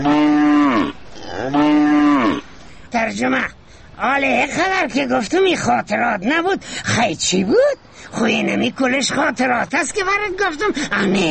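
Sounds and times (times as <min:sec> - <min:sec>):
speech: 0:00.0 - 0:00.4, 0:03.1 - 0:11.3
cow mooing with drawn-out lowing calls: 0:00.0 - 0:02.5.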